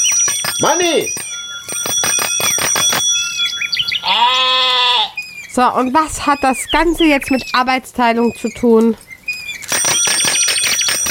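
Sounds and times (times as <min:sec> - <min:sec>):
bicycle bell ringing: 0:00.0 - 0:04.5, 0:09.6 - 0:11.0
speech: 0:00.6 - 0:01.3, 0:05.6 - 0:09.1.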